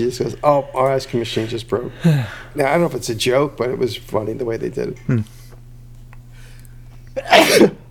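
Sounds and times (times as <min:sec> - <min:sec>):
speech: 0:00.0 - 0:05.4, 0:07.2 - 0:07.7
low hum: 0:00.0 - 0:07.8
person sneezing: 0:07.2 - 0:07.8.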